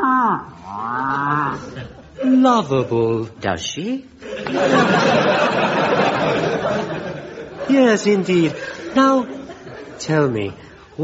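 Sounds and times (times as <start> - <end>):
cow mooing: 0.0 - 1.7
speech: 2.4 - 7.0, 7.7 - 9.4, 10.0 - 11.0
laughter: 4.2 - 10.5.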